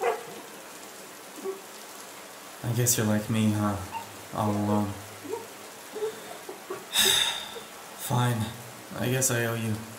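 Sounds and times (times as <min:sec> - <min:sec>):
speech: 0:02.6 - 0:05.0, 0:08.1 - 0:09.9
small dog whimpering: 0:05.2 - 0:06.8.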